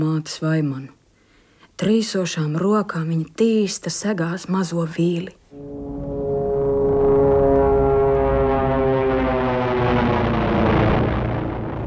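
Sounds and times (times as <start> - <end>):
speech: 0.0 - 1.0, 1.8 - 5.9
airplane engine drone flying low over a forest: 5.5 - 11.8.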